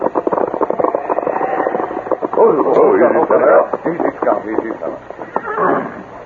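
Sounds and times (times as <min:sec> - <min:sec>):
clattering horse hoofbeats: 0:00.1 - 0:06.1
horse whinnying: 0:00.9 - 0:02.2, 0:05.3 - 0:06.1.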